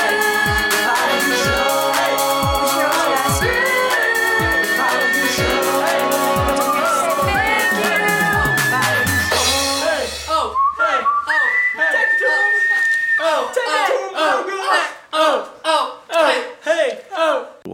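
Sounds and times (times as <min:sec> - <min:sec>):
busy loud music track: 0:00.0 - 0:10.4
bright whistled melody: 0:03.6 - 0:13.5
shouting voices or crowd noise: 0:09.8 - 0:17.6.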